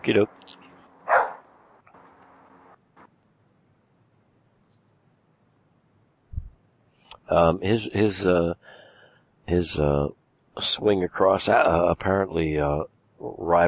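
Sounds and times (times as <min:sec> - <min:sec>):
speech: 0:00.0 - 0:00.6, 0:07.3 - 0:08.8, 0:09.5 - 0:13.6
dog barking: 0:01.1 - 0:01.4.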